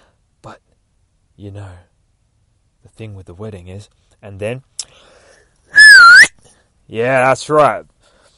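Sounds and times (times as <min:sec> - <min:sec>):
speech: 0:00.4 - 0:00.7, 0:01.4 - 0:01.9, 0:02.8 - 0:05.1, 0:06.9 - 0:07.9
loud piercing whistle: 0:05.7 - 0:06.4.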